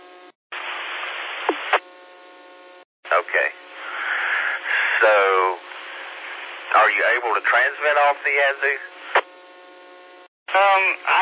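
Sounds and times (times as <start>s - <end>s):
white noise from a radio on a repeater: 0.5s - 1.9s, 3.1s - 9.3s, 10.5s - 11.2s
speech: 7.0s - 8.9s, 10.6s - 11.2s.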